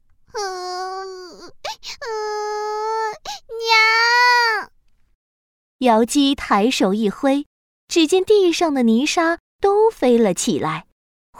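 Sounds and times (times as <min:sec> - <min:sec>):
child crying loudly after falling in fright: 0:00.4 - 0:04.7
speech: 0:05.8 - 0:11.3.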